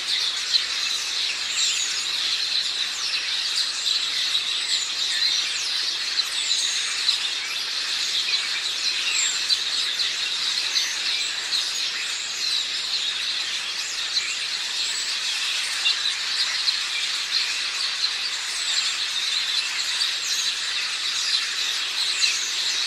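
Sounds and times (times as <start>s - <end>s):
Passer domesticus house sparrows chirping in a flock: 0.0s - 22.8s.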